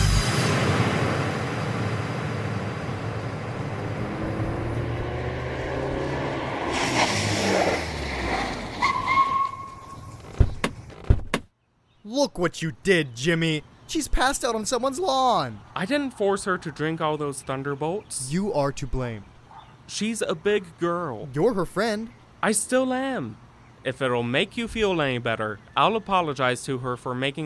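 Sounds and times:
car engine rumbling while pulling over at a bus stop: 0.1s - 11.3s
sharp clicks and thuds: 10.2s - 11.5s
speech: 12.3s - 19.3s, 19.9s - 27.4s.

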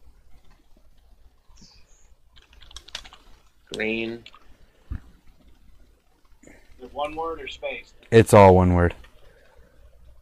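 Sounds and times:
computer keyboard typing a contact name: 2.4s - 4.5s
speech: 3.7s - 4.4s, 6.9s - 9.0s.

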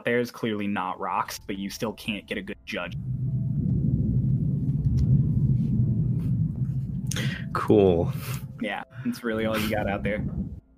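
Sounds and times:
speech: 0.0s - 3.2s, 7.6s - 10.6s
deep thunder rumble from a huge thunderstorm in Georgia: 2.8s - 10.7s.

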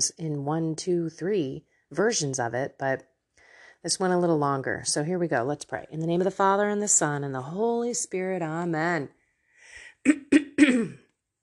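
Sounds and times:
speech: 0.0s - 3.1s, 3.8s - 9.2s, 10.0s - 11.0s
person clearing phlegm from throat: 10.1s - 11.1s.

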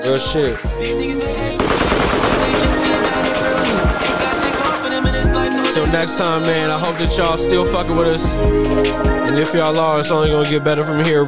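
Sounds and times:
speech: 0.0s - 2.4s, 5.8s - 11.2s
automatic gunfire sound effect: 1.5s - 7.2s.

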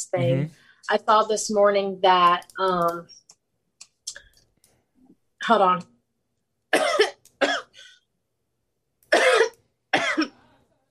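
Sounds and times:
speech: 0.0s - 3.2s, 5.4s - 5.9s
harsh coughs from a popcorn kernel stuck in the throat: 6.7s - 8.0s, 9.1s - 10.4s.

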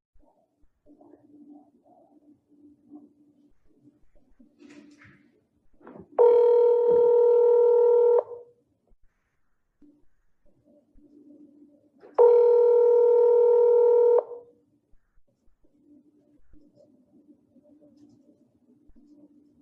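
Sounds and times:
ringback tone of outgoing phone call: 6.2s - 8.4s, 12.2s - 14.4s.

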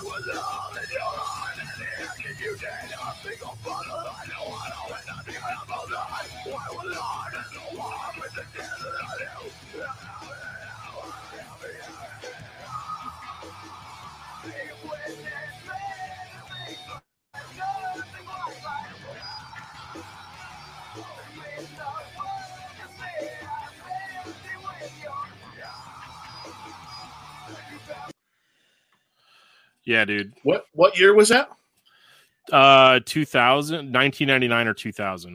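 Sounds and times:
harsh screamed vocals: 0.0s - 28.1s
loud rock song with dense distorted band sound: 0.0s - 28.1s
speech: 0.2s - 9.9s, 29.9s - 31.6s, 32.5s - 35.3s.

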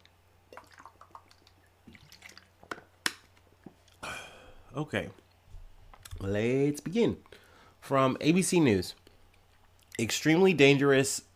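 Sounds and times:
water pouring into a glass: 0.5s - 2.6s
speech: 4.8s - 5.2s, 6.2s - 9.0s, 10.0s - 11.3s.

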